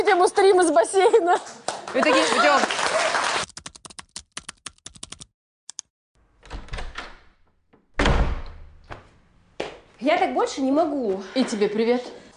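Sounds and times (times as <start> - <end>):
speech: 0.0 - 3.3, 10.0 - 12.2
door latch and handle clicks: 6.4 - 8.8
solid thump of a door settling: 6.4 - 9.1.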